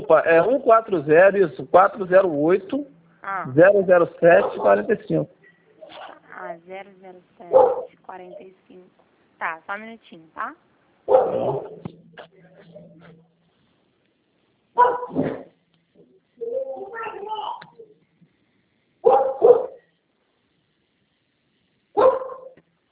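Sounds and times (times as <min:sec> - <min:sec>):
speech: 0:00.1 - 0:13.2, 0:14.8 - 0:15.4
dog barking: 0:04.3 - 0:04.8, 0:07.5 - 0:08.0, 0:11.1 - 0:11.8, 0:14.8 - 0:15.5, 0:19.0 - 0:19.8, 0:22.0 - 0:22.6.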